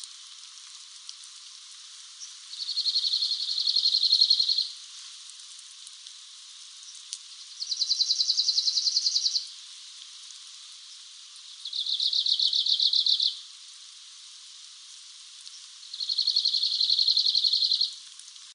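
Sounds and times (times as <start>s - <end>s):
Lapland longspur singing: 2.6s - 4.7s, 7.6s - 9.5s, 11.6s - 13.4s, 15.9s - 18.0s.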